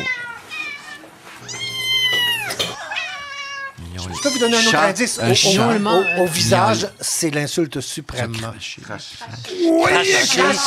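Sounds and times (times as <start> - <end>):
cat meowing: 0.0 - 7.0
speech: 4.4 - 10.6.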